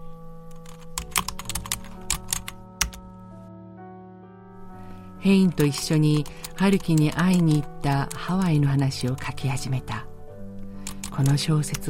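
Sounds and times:
fingers typing on a computer keyboard: 0.5 - 3.0, 5.6 - 9.4, 10.7 - 11.8
speech: 5.2 - 10.1, 11.2 - 11.8.

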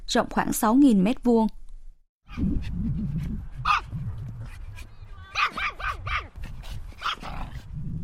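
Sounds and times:
speech: 0.1 - 1.6, 2.3 - 4.0
pet dogs barking and yipping while playing on a grass field: 3.6 - 7.7.

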